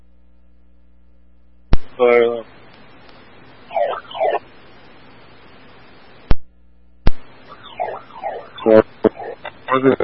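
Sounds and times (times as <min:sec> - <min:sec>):
steady hum: 0:00.0 - 0:10.0
speech: 0:02.0 - 0:02.5
building burglar alarm wailing: 0:03.7 - 0:04.4, 0:07.5 - 0:09.5.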